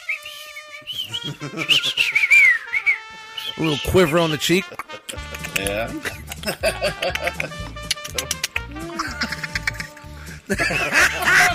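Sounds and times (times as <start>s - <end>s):
person whistling a wavering high tune: 0.0s - 4.4s
laughter: 0.9s - 2.5s, 4.0s - 11.5s
speech: 1.0s - 2.5s, 3.5s - 4.9s, 5.6s - 8.4s, 10.5s - 11.4s.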